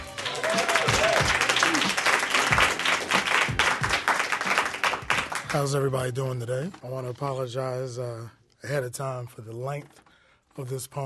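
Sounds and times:
audience applauding for a poet: 0:00.0 - 0:05.7
faint voices and whoops: 0:00.3 - 0:02.0
speech: 0:05.5 - 0:10.0, 0:10.6 - 0:11.0.

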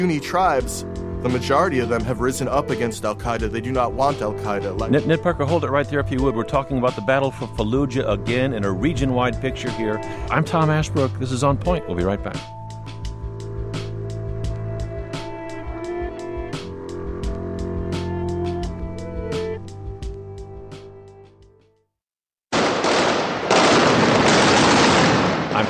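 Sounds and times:
speech: 0:00.0 - 0:12.6
steady low hum: 0:12.8 - 0:20.4
gunfire bursts in combat: 0:22.5 - 0:25.6.

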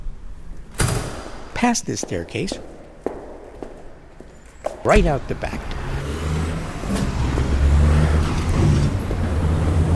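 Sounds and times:
busy traffic on a four-lane road: 0:01.3 - 0:09.9
speech: 0:01.6 - 0:02.7, 0:04.8 - 0:05.8.

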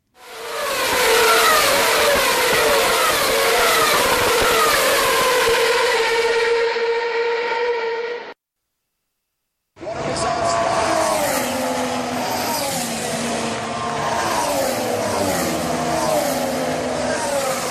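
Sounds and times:
high-pitched Formula One race car engine whine: 0:00.2 - 0:08.4, 0:09.8 - 0:17.6.

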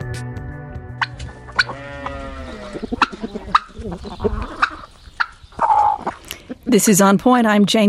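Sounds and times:
flock of chickens clucking and squawking: 0:01.0 - 0:06.9
speech: 0:06.7 - 0:07.8.

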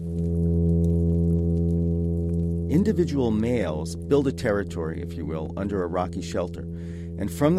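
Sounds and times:
plainfin midshipman fish hum advertisement call made with the swim bladder, underwater: 0:00.0 - 0:07.5
speech: 0:02.7 - 0:07.5.

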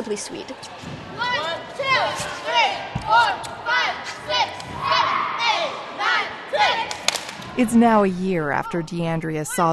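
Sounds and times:
speech: 0:00.0 - 0:05.8, 0:07.6 - 0:09.7
group of girls shouting while warming up: 0:01.2 - 0:07.6.

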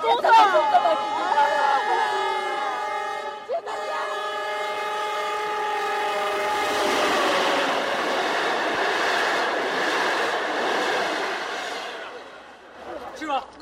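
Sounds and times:
train passing on railway tracks: 0:00.1 - 0:13.4
train horn: 0:00.8 - 0:08.1.

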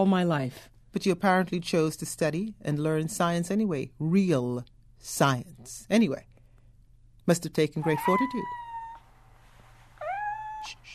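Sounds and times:
speech: 0:00.0 - 0:06.3, 0:07.2 - 0:08.6
faint low hum: 0:00.0 - 0:10.9
young female kitten meowing on the way to the vet: 0:07.8 - 0:09.0, 0:10.0 - 0:10.9.

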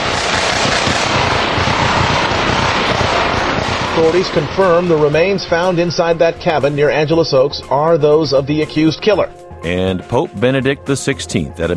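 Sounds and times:
rapid gunfire from a shootout: 0:00.0 - 0:07.6
speech: 0:04.0 - 0:11.7.

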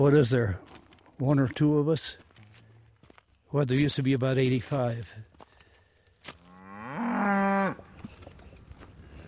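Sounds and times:
speech: 0:00.0 - 0:02.2, 0:03.5 - 0:05.4
faint outdoor noise: 0:00.0 - 0:09.2
cow mooing on a family cattle ranch in a valley: 0:06.5 - 0:07.8.

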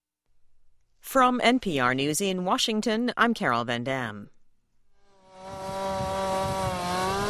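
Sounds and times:
speech: 0:01.1 - 0:04.4
chainsaw cutting wood during tornado cleanup in Ohio: 0:05.0 - 0:07.2.

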